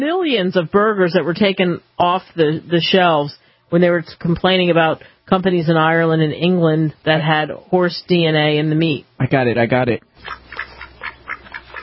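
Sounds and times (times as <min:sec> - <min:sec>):
speech: 0:00.0 - 0:10.6
ducks quacking: 0:10.2 - 0:11.8.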